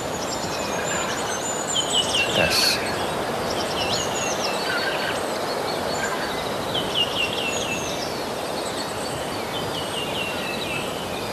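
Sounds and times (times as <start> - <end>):
outdoor forest ambience during morning dawn chorus: 0.0 - 7.1
goldcrest singing high-pitched song: 0.0 - 11.2
spoken word: 2.2 - 3.0
speech: 2.4 - 2.9.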